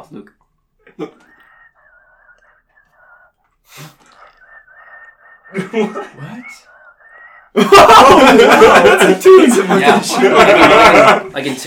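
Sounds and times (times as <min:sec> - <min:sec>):
speech: 0:00.0 - 0:01.4, 0:03.7 - 0:04.1, 0:05.5 - 0:06.7, 0:07.6 - 0:11.6
sharp breathy sniffs: 0:01.2 - 0:07.4
thin airy whistle through the nose: 0:01.3 - 0:07.6
laughter: 0:05.5 - 0:06.5, 0:07.5 - 0:11.4.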